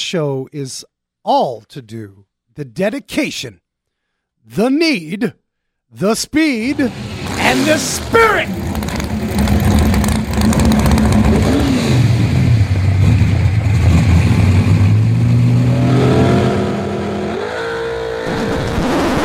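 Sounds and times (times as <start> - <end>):
speech: 0.1 - 3.6, 4.4 - 8.7
drag racing car engine roaring in a burnout: 6.6 - 19.2.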